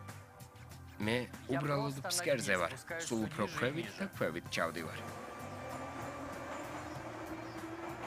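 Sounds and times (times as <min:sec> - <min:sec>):
speech: 0:01.0 - 0:05.2
underground subway train rumble in Boston: 0:04.7 - 0:08.0.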